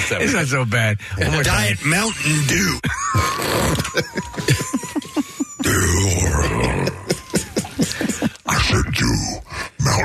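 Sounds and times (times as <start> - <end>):
speech: 0.1 - 4.8
laughter: 2.6 - 8.7
loud rough burp while saying a word: 3.1 - 4.0, 5.6 - 7.1.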